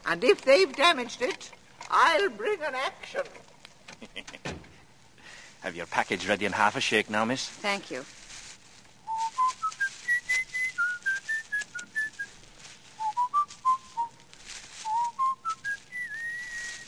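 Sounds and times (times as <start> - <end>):
speech: 0.1 - 4.7, 5.6 - 8.2
person whistling a bright wandering melody: 9.1 - 12.3, 13.0 - 14.1, 14.8 - 16.8.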